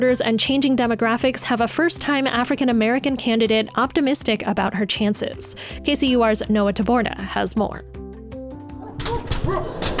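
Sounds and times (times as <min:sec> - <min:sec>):
speech: 0:00.0 - 0:08.0
dog barking at the door: 0:08.8 - 0:09.9.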